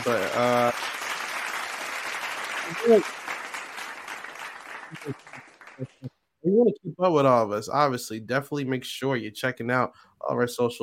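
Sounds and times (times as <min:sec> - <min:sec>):
speech: 0:00.0 - 0:00.8, 0:02.7 - 0:03.1, 0:05.0 - 0:10.8
applause at the close of a live stream: 0:00.0 - 0:06.1.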